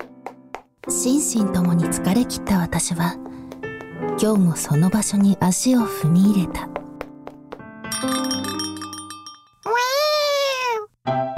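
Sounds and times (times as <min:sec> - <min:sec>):
speech: 0:00.8 - 0:03.4, 0:04.0 - 0:06.8
bright chiming bell: 0:07.9 - 0:09.7
cat meowing in a cat café: 0:09.7 - 0:10.9.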